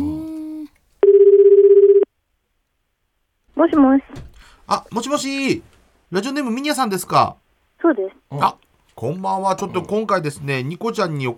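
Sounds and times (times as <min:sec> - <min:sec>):
telephone line tone: 0:01.0 - 0:02.1
speech: 0:03.6 - 0:11.3.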